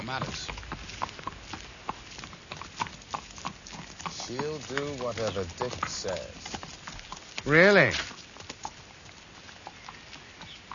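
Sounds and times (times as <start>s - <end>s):
horse hooves clip-clopping at a walking pace: 0.0s - 10.7s
speech: 0.1s - 0.8s, 4.3s - 6.6s, 7.4s - 8.2s.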